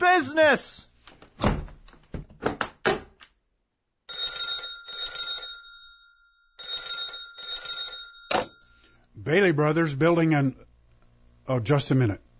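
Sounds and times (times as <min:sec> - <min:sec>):
speech: 0:00.1 - 0:00.9, 0:09.3 - 0:10.7, 0:11.5 - 0:12.2
door thudding shut: 0:01.4 - 0:03.1
telephone bell ringing loudly: 0:04.1 - 0:08.9.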